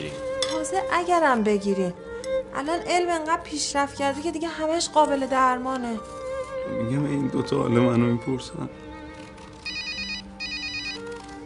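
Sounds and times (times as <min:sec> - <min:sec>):
speech: 0:00.7 - 0:08.8
telephone ringing with warbling electronic tone: 0:09.7 - 0:11.2.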